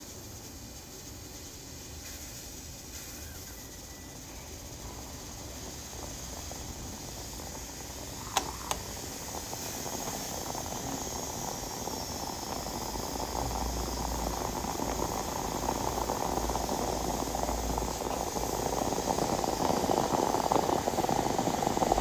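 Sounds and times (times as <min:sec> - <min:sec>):
Italian moka pot: 0:00.0 - 0:21.9.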